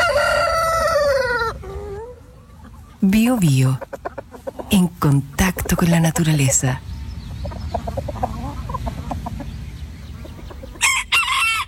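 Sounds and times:
rooster crowing: 0:00.0 - 0:02.0, 0:10.8 - 0:11.6
hens clucking and chattering: 0:00.0 - 0:11.6
speech: 0:03.0 - 0:06.9.

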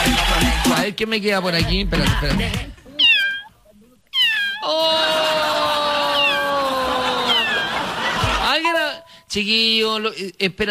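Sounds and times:
speech: 0:00.1 - 0:02.7, 0:09.3 - 0:10.6
kitten meowing: 0:03.0 - 0:04.8, 0:06.0 - 0:07.8
laughter: 0:04.7 - 0:08.9.

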